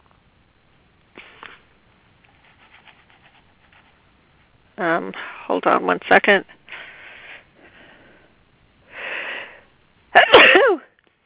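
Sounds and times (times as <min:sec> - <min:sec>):
speech: 0:04.8 - 0:06.6
breathy inhales: 0:06.7 - 0:09.8.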